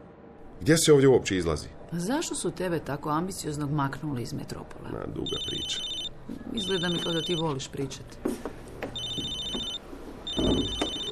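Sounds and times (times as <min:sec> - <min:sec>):
speech: 0:00.6 - 0:08.6
telephone ringing with a bright electronic trill: 0:05.2 - 0:07.7, 0:09.0 - 0:11.1.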